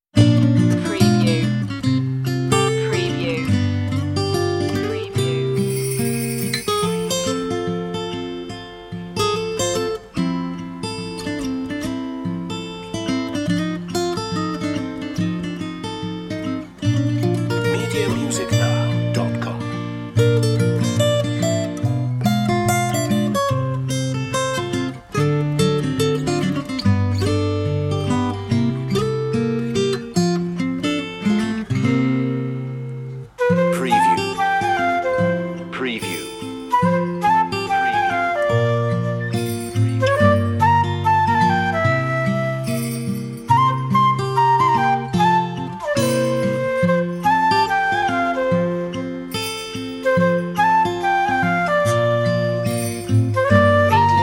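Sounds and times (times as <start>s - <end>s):
guitar playing a Christmas song: 0.2s - 54.2s.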